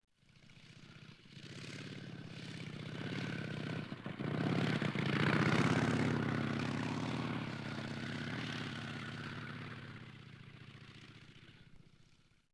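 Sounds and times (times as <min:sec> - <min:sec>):
car passing: 0:00.8 - 0:11.8.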